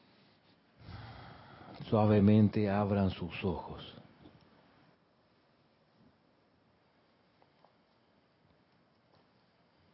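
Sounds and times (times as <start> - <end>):
deep inhalation through the nose during a guided visualization: 0.8 - 1.8
speech: 1.9 - 4.0.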